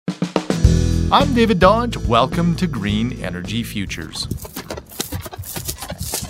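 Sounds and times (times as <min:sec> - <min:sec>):
speech: 0:01.1 - 0:04.6
Canadian horse hooves clip-clopping on a hard surface: 0:03.6 - 0:06.2.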